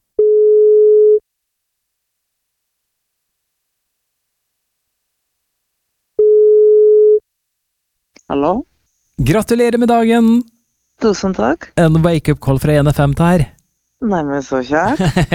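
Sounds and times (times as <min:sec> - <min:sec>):
telephone ringback tone while calling: 0:00.2 - 0:01.2, 0:06.2 - 0:07.2
speech: 0:08.3 - 0:15.3
laughter: 0:14.9 - 0:15.3.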